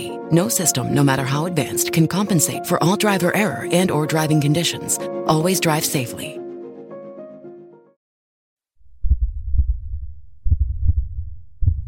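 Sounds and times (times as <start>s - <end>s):
speech: 0.0s - 6.4s
man's heart beating: 8.9s - 11.8s.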